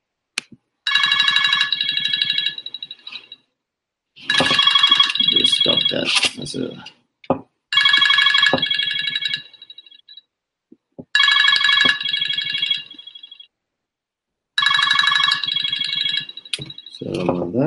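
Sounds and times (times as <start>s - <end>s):
alarm clock ringing in loud buzzy electronic bursts: 0.9s - 3.4s, 4.2s - 6.5s, 7.7s - 10.2s, 11.1s - 13.5s, 14.6s - 17.3s
speech: 5.9s - 7.0s.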